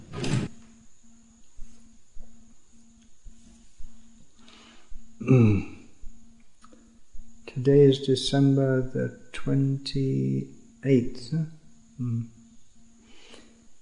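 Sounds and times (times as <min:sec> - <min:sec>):
drawer sliding open with a scraping rumble: 0:00.0 - 0:00.5
faint steady pulsing hum: 0:00.0 - 0:13.7
speech: 0:05.3 - 0:05.7, 0:07.6 - 0:12.4.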